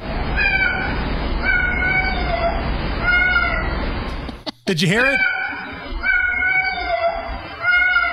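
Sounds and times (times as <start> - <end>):
cat meowing like a small child calling out: 0.5 - 3.7, 5.2 - 8.1
speech: 4.7 - 5.3.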